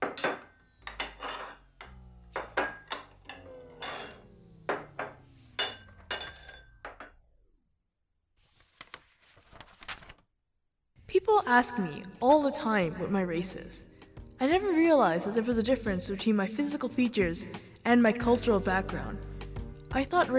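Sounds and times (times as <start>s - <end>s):
dishes clinking and clattering as they are stacked: 0.0s - 6.9s
speech: 11.3s - 19.3s, 19.9s - 20.3s.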